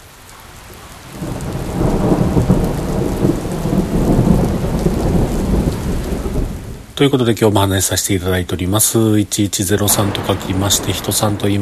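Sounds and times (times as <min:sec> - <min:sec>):
steady heavy rain pouring down: 0:00.0 - 0:11.6
speech: 0:07.0 - 0:11.6
deep rumbling undertone beneath rain: 0:09.8 - 0:11.6.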